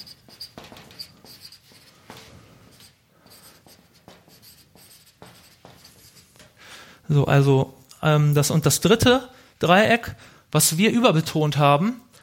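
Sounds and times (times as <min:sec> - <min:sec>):
pen scratching while handwriting a word: 0:00.0 - 0:02.0, 0:02.7 - 0:06.4
speech: 0:07.1 - 0:12.1.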